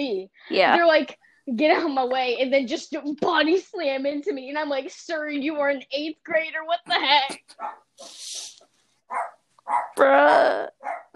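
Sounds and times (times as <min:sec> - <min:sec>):
speech: 0:00.0 - 0:11.0
short sharp dog barks: 0:07.6 - 0:07.9, 0:09.1 - 0:10.0, 0:10.8 - 0:11.1
hissing scuffling noise: 0:08.0 - 0:08.8.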